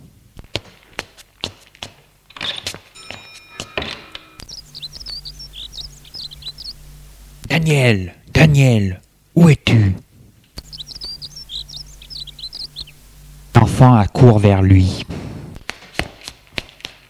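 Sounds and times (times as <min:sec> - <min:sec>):
open outdoor air of a garden in the morning: 0:00.0 - 0:17.0
hand slapping a child's face: 0:00.4 - 0:02.0, 0:15.6 - 0:17.0
door opening onto a garden: 0:02.3 - 0:04.5
birds chirping in a garden: 0:02.5 - 0:07.5, 0:10.6 - 0:13.6
speech: 0:07.7 - 0:10.0, 0:13.8 - 0:15.2.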